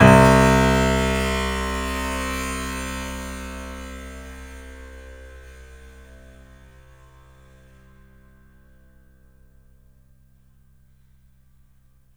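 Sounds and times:
piano rattle on A sharp 2: 0.0s - 7.0s.

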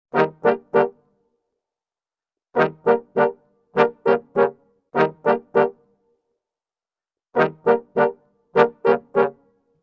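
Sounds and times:
orchestral brass arrangement in G minor: 0.1s - 1.0s, 2.6s - 5.8s, 7.4s - 9.4s.

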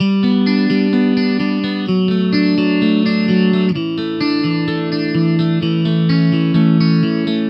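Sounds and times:
electric pop guitar riff: 0.0s - 7.4s.

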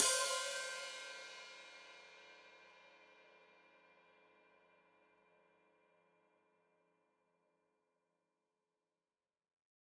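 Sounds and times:
open hi-hat played with foot pedal: 0.0s - 0.8s.

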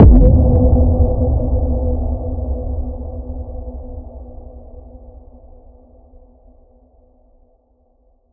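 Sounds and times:
underground impact: 0.0s - 3.4s.

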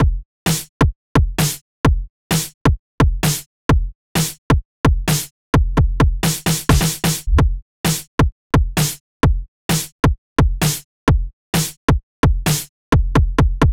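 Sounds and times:
kick drum: 0.0s - 0.2s, 1.2s - 2.1s, 2.7s - 3.9s, 4.5s - 7.6s, 8.2s - 11.3s, 11.9s - 13.7s
snare drum: 1.4s - 1.6s, 3.2s - 3.4s, 5.1s - 5.3s, 6.2s - 8.1s, 8.8s - 9.0s, 10.6s - 10.8s, 11.6s - 11.8s, 12.5s - 12.7s.

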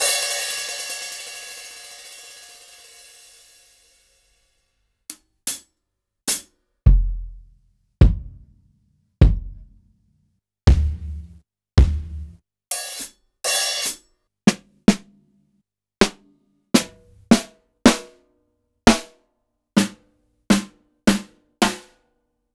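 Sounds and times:
acoustic drum kit: 0.0s - 3.6s, 6.3s - 8.5s, 9.2s - 9.8s, 10.7s - 15.1s, 16.0s - 16.2s, 16.8s - 18.2s, 18.9s - 19.2s, 19.8s - 22.0s.

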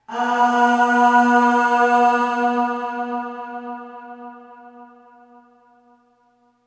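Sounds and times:
voice singing short aah on B2 with long reverb: 0.0s - 4.8s.

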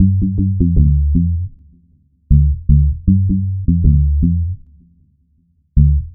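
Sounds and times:
dub electric bass: 0.0s - 1.6s, 2.3s - 4.8s, 5.8s - 6.1s.

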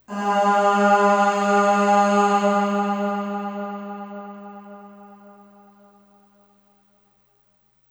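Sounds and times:
short voice singing aah on G#2 with long reverb: 0.0s - 5.4s.

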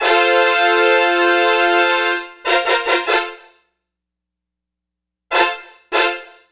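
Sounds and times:
synthetic brass section winds: 0.0s - 3.5s, 5.3s - 6.4s.

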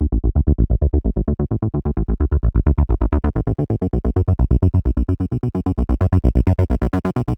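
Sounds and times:
alternating bass line in D major: 0.0s - 7.3s.

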